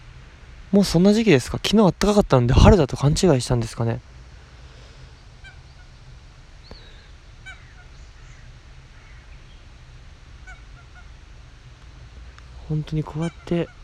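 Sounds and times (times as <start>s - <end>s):
speech: 0.7s - 4.1s, 12.7s - 13.8s
bird honking ga-ga calls: 5.4s - 6.0s, 6.8s - 9.4s, 10.4s - 11.2s, 13.0s - 13.8s.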